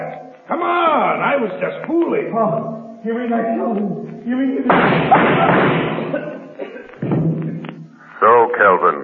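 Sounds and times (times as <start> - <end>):
speech: 0.5 - 6.3, 8.6 - 9.0
gunshot inside a vault: 4.7 - 6.1.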